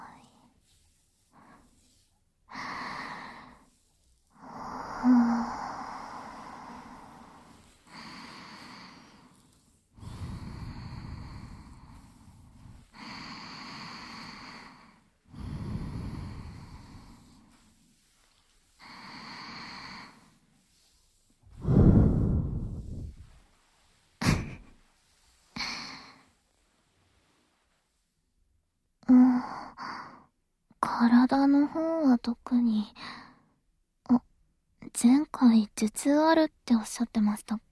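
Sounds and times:
slow deep breathing: 0:00.1 - 0:24.6
speech: 0:31.0 - 0:33.1, 0:35.0 - 0:37.7.

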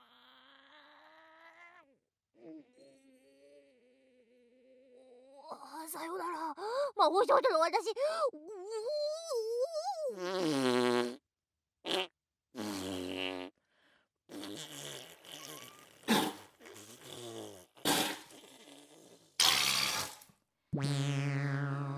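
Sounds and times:
speech: 0:05.5 - 0:08.9, 0:10.1 - 0:11.2
loud buzzy sputtering farts: 0:10.2 - 0:11.2, 0:11.8 - 0:13.6, 0:14.3 - 0:21.9.

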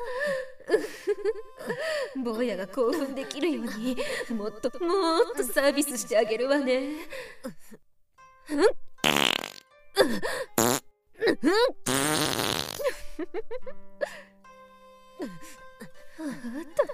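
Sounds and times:
speech: 0:00.7 - 0:07.7, 0:08.5 - 0:09.3, 0:11.4 - 0:12.5, 0:13.2 - 0:14.2, 0:15.2 - 0:15.6, 0:16.2 - 0:16.9
farting: 0:09.0 - 0:09.6, 0:10.6 - 0:10.8, 0:11.9 - 0:12.8.

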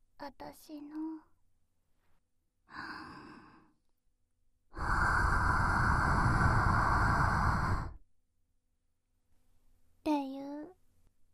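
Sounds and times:
speech: 0:00.2 - 0:01.3, 0:02.7 - 0:03.2
hot breath blown close to the ear: 0:04.7 - 0:08.0.

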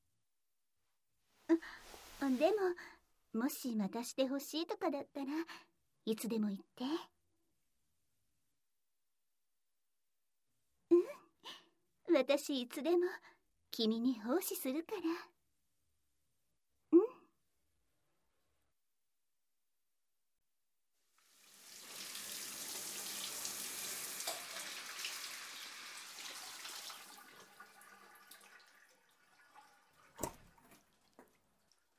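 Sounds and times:
speech: 0:02.2 - 0:07.1, 0:11.5 - 0:15.3
steady hiss of shower water running: 0:21.2 - 0:31.9.

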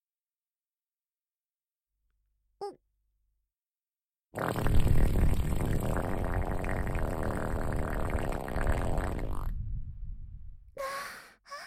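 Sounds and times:
brief high squeaky fart: 0:04.4 - 0:09.5.

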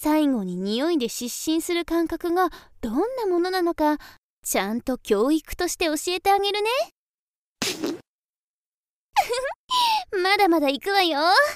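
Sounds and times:
speech: 0:00.0 - 0:07.0, 0:07.6 - 0:08.0, 0:09.2 - 0:11.5
fart: 0:07.6 - 0:08.1.

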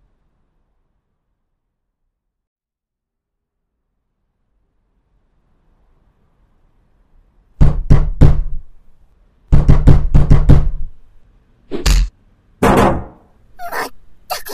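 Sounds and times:
knocking on a door: 0:07.6 - 0:08.6, 0:09.5 - 0:11.0, 0:12.6 - 0:13.2.

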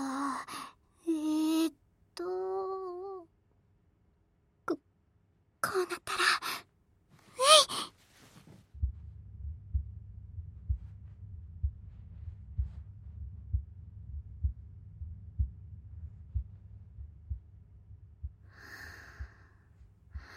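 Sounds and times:
faint constant hum: 0:00.0 - 0:20.3
speech: 0:05.6 - 0:06.5
heartbeat thumping: 0:08.3 - 0:20.3.

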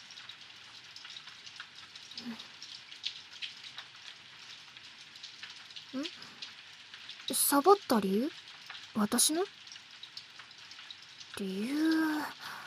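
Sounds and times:
steady rain pattering: 0:00.0 - 0:12.6
speech: 0:02.2 - 0:02.5, 0:07.3 - 0:08.4, 0:09.0 - 0:09.6, 0:11.4 - 0:12.4.

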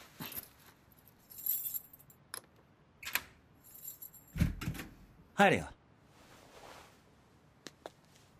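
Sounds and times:
keys jangling at a door: 0:00.3 - 0:02.2, 0:03.6 - 0:04.4
speech: 0:05.4 - 0:05.8.

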